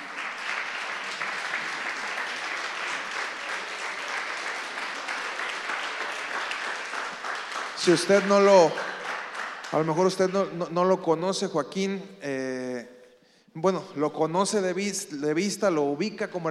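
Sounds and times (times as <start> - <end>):
sustained audience applause: 0.0 - 10.4
speech: 7.8 - 8.9, 9.7 - 12.6, 13.6 - 16.5.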